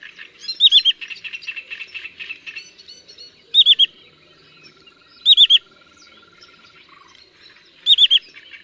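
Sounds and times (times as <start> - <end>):
other birds chirping: 0.0 - 8.6
migrating sandpiper giving three-syllable whistled call in Poland: 0.5 - 1.0, 3.5 - 4.0, 5.2 - 5.7, 7.8 - 8.4.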